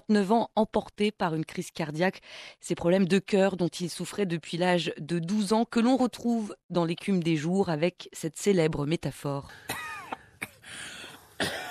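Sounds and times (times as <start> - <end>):
speech: 0.1 - 9.9, 10.7 - 11.6
woman coughing: 9.7 - 10.6, 11.3 - 11.6.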